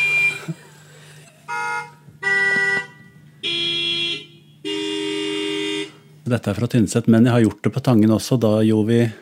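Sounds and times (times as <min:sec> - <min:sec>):
car horns playing an anthem outdoors in Tynset Norway: 0:00.0 - 0:00.6, 0:01.4 - 0:06.2
laughter: 0:00.0 - 0:01.5
speech: 0:06.3 - 0:09.1.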